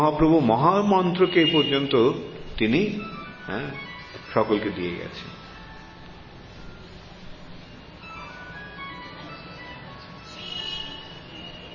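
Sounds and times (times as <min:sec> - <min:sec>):
speech: 0:00.0 - 0:05.4
noise: 0:00.0 - 0:11.7
telephone ringing with a melodic ringtone: 0:02.8 - 0:04.6, 0:05.2 - 0:11.7.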